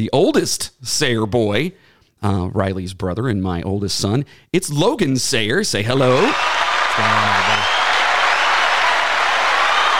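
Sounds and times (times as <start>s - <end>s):
speech: 0.0s - 7.5s
dense applause: 5.9s - 9.9s.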